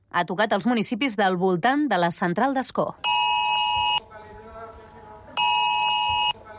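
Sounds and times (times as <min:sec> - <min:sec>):
speech: 0:00.1 - 0:03.4
buzzing multi-tone phone emergency alert tone: 0:03.0 - 0:04.0, 0:05.4 - 0:06.4.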